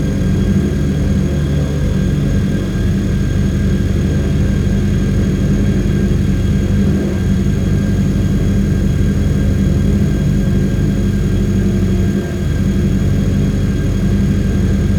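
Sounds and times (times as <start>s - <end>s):
medium reactor hellburn roar: 0.0s - 14.9s.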